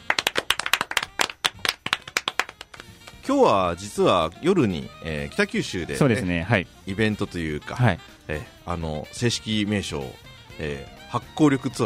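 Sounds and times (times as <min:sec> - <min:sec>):
small group clapping: 0:00.0 - 0:03.2
speech: 0:03.3 - 0:11.8.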